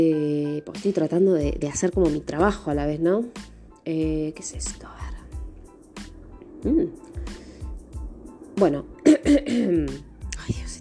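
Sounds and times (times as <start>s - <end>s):
speech: 0.0s - 5.1s, 6.6s - 7.4s, 8.6s - 10.7s
short voiced hum: 3.1s - 10.7s
person clearing throat: 9.0s - 10.0s.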